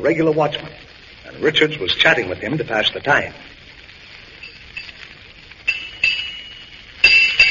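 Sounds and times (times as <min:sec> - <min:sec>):
speech: 0:00.0 - 0:03.6
ship's bell striking six bells: 0:05.7 - 0:07.4.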